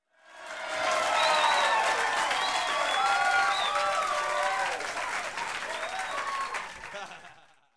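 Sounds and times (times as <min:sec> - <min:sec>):
audience applause: 0:00.2 - 0:07.6
audience laughing: 0:05.5 - 0:07.7.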